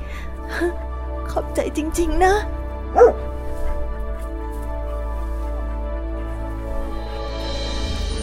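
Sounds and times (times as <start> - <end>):
steady droning musical background: 0.0 - 8.2
speech: 0.6 - 3.3
dog barking: 2.9 - 3.3.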